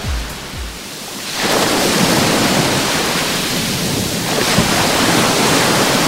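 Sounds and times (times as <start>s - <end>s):
low rumbling: 0.0s - 0.9s
surf washing onto the beach at Salobreña on the Costa Tropical: 0.8s - 6.0s.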